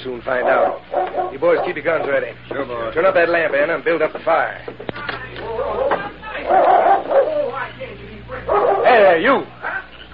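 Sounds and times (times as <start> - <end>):
speech: 0.0 - 9.6
dog barking: 0.4 - 2.2, 5.6 - 7.6, 8.5 - 9.9.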